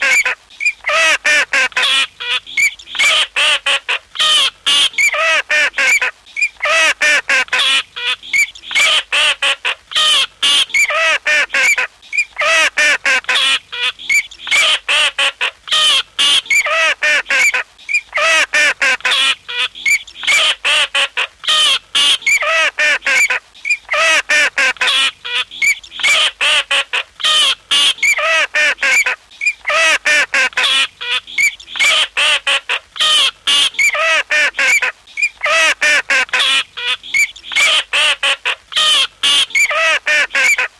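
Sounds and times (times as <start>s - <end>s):
teal duck: 0.0s - 40.7s.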